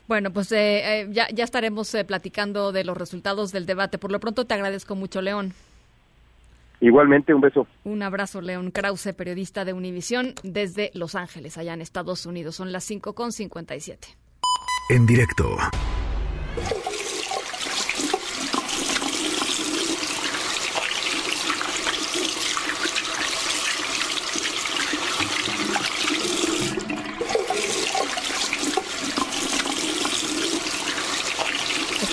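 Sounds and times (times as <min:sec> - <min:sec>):
speech: 0:00.1 - 0:05.7, 0:06.8 - 0:16.0, 0:16.6 - 0:16.9
water running into a washbasin: 0:16.6 - 0:32.1.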